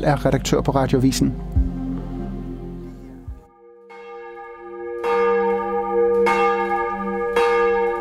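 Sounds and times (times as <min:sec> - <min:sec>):
speech: 0:00.0 - 0:01.6
brief low rumble: 0:00.0 - 0:03.5
large cathedral church bells ringing for morning service: 0:03.5 - 0:07.9.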